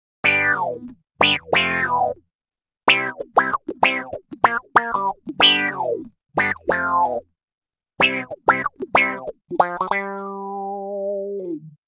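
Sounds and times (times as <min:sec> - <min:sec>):
funky synth wah with envelope: 0:00.2 - 0:02.2, 0:02.9 - 0:07.2, 0:08.0 - 0:11.5.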